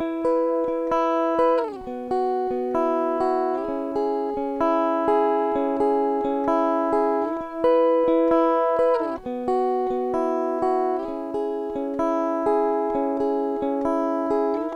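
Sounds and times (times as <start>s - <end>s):
guitar loop in E major at 130 BPM: 0.0s - 14.7s.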